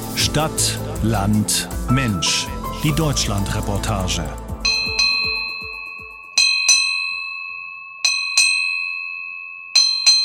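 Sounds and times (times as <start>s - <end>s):
speech: 0.4s - 4.4s
ship's bell ringing: 4.6s - 10.2s.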